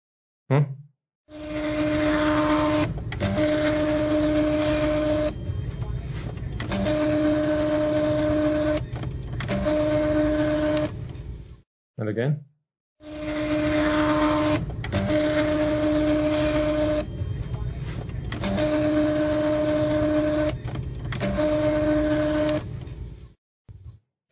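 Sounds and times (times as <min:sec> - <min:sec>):
speech: 0:00.5 - 0:01.4, 0:12.1 - 0:12.5
voice imitating a credit card receipt printer: 0:01.8 - 0:10.8, 0:13.4 - 0:22.6.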